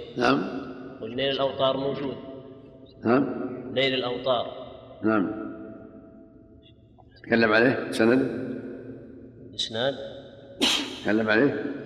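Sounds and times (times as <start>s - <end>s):
speech: 0.2s - 2.3s, 3.0s - 5.4s, 7.2s - 8.4s, 9.6s - 11.8s
person sneezing: 10.6s - 11.0s.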